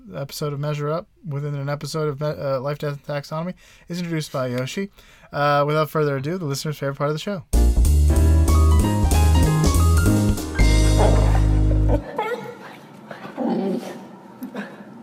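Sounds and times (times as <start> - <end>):
speech: 0.1 - 7.6
music: 7.5 - 12.0.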